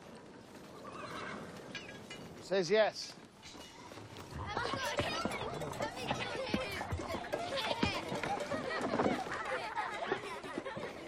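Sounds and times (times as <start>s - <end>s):
horse hooves clip-clopping on a hard surface: 0.0s - 11.0s
horse whinnying: 0.8s - 1.6s
speech: 2.5s - 3.6s
laughter: 4.3s - 11.0s.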